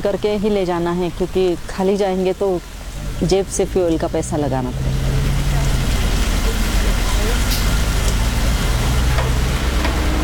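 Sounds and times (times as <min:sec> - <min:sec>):
speech: 0:00.0 - 0:04.9
heavy rain: 0:00.0 - 0:10.2
low rumbling hum: 0:02.6 - 0:10.2.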